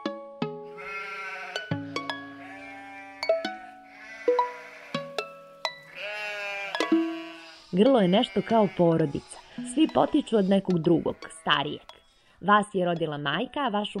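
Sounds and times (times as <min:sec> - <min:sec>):
flock of sheep bleating: 0:00.7 - 0:11.9
speech: 0:07.7 - 0:13.9.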